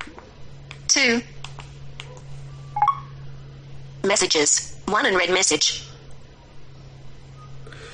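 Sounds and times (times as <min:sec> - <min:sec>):
faint steady hum: 0:00.0 - 0:07.9
speech: 0:00.9 - 0:01.4, 0:04.0 - 0:05.9
phone keypad beep registering a digit: 0:02.8 - 0:03.1.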